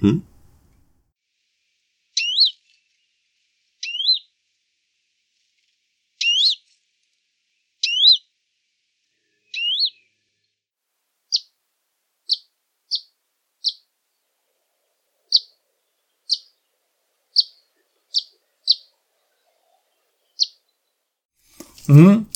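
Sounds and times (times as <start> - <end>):
speech: 0.0 - 0.3, 21.9 - 22.3
Eastern Bonelli's warbler short sparrow-like chip calls: 2.2 - 2.6, 3.8 - 4.3, 6.2 - 6.6, 7.8 - 8.2, 9.5 - 10.1, 12.3 - 13.8, 15.3 - 15.6, 16.2 - 16.6, 17.3 - 18.9, 19.6 - 20.6
Western Bonelli's warbler upslurred whistled calls: 2.2 - 2.6, 3.8 - 4.3, 6.2 - 6.6, 7.8 - 8.2, 9.5 - 10.1.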